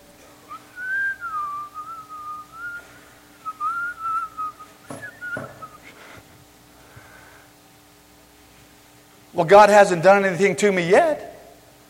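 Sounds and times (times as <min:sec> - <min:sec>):
person whistling a short wavering melody: 0:00.5 - 0:06.0
sharp knocks: 0:04.9 - 0:05.7
speech: 0:09.4 - 0:11.2.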